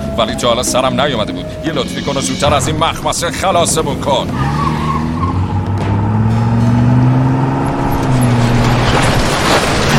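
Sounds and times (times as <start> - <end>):
speech: 0.2 - 4.9
car engine roaring as it accelerates during an escape: 3.5 - 9.4.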